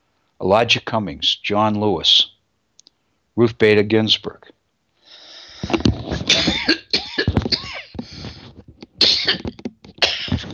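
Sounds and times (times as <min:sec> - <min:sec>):
speech: 0:00.4 - 0:02.3, 0:03.4 - 0:04.6, 0:05.6 - 0:06.0
strained breaths: 0:05.0 - 0:06.1, 0:07.9 - 0:08.7
harsh rasping coughing fit: 0:06.2 - 0:08.0, 0:09.0 - 0:10.5.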